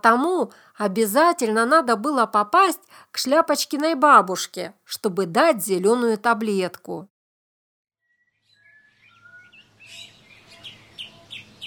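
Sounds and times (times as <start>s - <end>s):
speech: 0.0s - 7.1s
birds chirping in a sunlit forest: 8.2s - 11.6s.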